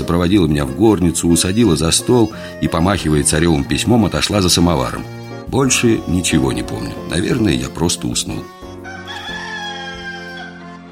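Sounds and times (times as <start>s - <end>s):
speech: 0.1s - 8.6s
rooster crowing: 8.8s - 10.9s.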